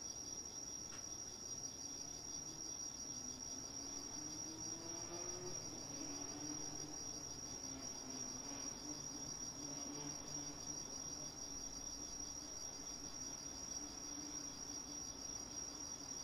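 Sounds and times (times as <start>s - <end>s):
autumn insects trilling in a night garden: 0.2s - 16.2s.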